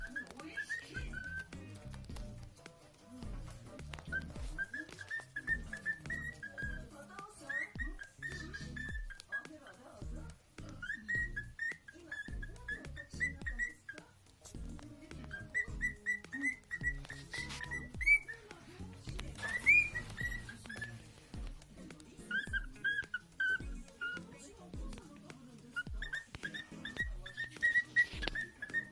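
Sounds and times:
Lutino cockatiel whistling a tune: 0.0 - 25.1, 25.7 - 28.9
murmuring: 0.0 - 28.9.

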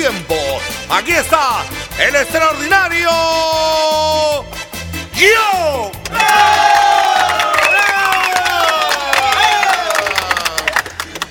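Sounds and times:
speech: 0.0 - 4.6, 5.2 - 6.9
comedy show audience cheering and shouting: 6.0 - 10.7
comedy show audience applauding: 6.1 - 11.2.

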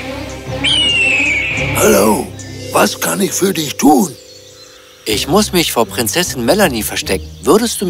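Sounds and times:
eagle crying as it flies in: 0.6 - 5.0
speech: 2.8 - 4.2, 5.1 - 7.8.

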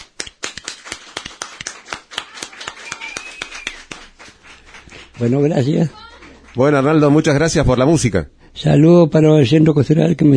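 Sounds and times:
applause after a music performance: 0.0 - 7.3
speech: 5.2 - 6.0, 6.6 - 10.3.

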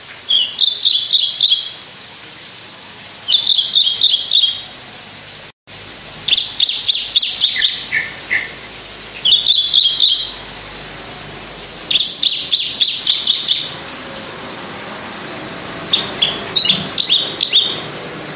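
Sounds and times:
Javan bush lark singing in skyward song flight: 0.3 - 1.8, 3.3 - 4.7, 6.3 - 8.6, 9.2 - 10.4, 11.9 - 13.8, 15.9 - 17.9.

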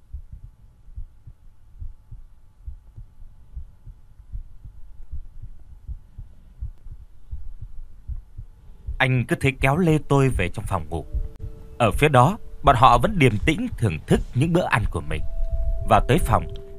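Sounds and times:
heart beating rapidly: 0.0 - 9.0, 11.1 - 11.6, 13.0 - 14.4
faint low hum: 0.0 - 16.7
speech: 9.0 - 11.2, 11.8 - 16.6.

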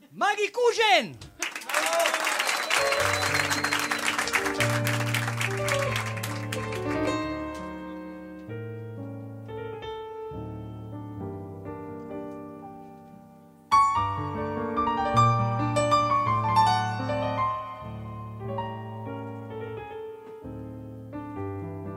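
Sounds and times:
speech: 0.2 - 2.0
audience applause: 1.3 - 7.4
music with sustained melodic notes: 3.0 - 21.9.

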